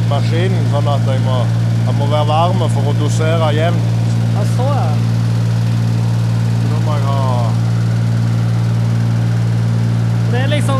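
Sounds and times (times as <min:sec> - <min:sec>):
engine of a mower-like feed dispenser idling: 0:00.0 - 0:10.7
speech: 0:00.1 - 0:05.2, 0:10.3 - 0:10.7.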